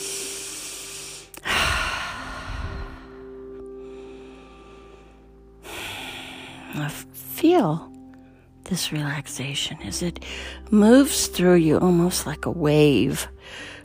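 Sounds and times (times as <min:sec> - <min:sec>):
slow deep breathing during a guided relaxation: 0:00.0 - 0:06.8, 0:13.4 - 0:13.8
speech: 0:06.7 - 0:07.9, 0:08.7 - 0:13.7.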